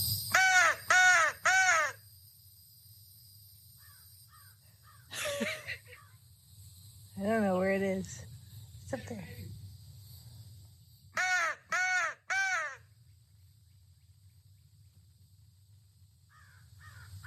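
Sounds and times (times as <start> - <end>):
crows cawing during a morning feeding: 0.3 - 2.0, 3.8 - 5.1, 11.2 - 12.9, 16.3 - 17.2
laughter: 5.1 - 6.0.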